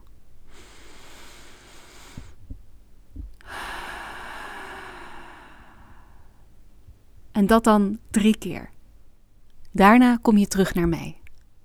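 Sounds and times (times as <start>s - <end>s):
slow deep calm breaths: 0.4s - 7.1s
speech: 7.4s - 8.7s, 9.8s - 11.2s.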